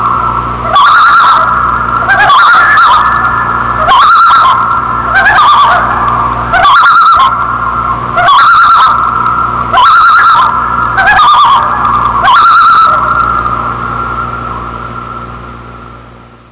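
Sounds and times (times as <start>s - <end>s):
loon calling with quavering tremolo bursts: 0.0s - 15.6s
low constant hum: 0.0s - 16.4s.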